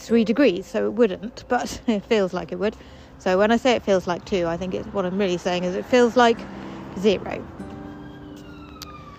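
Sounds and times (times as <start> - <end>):
speech: 0.0 - 7.6
steady rumble of street traffic: 0.0 - 9.1
ambulance siren wailing outdoors on a grey January day: 7.6 - 9.1.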